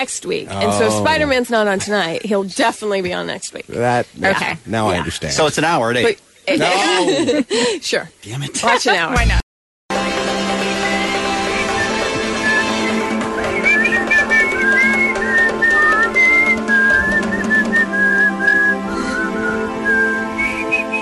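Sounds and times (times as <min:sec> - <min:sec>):
speech: 0:00.0 - 0:09.5
instrumental backing track of a pop song: 0:09.1 - 0:20.9
whistled melody from a pop song: 0:10.6 - 0:20.9.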